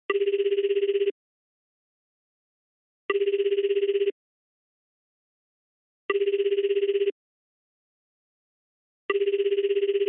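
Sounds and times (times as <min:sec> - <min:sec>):
telephone signal ringback tone: 0:00.1 - 0:01.2, 0:03.1 - 0:04.2, 0:06.1 - 0:07.2, 0:09.1 - 0:10.0.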